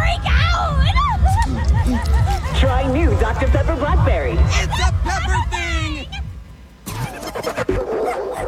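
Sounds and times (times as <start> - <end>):
laughter: 0.1 - 6.3
speech: 2.0 - 5.5
dog barking and whining: 7.7 - 8.4.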